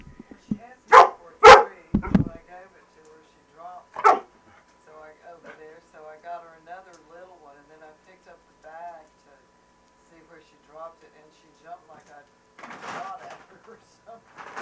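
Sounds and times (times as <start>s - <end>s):
dog barking: 0.0s - 2.4s, 4.0s - 4.3s
people talking softly: 0.0s - 14.5s.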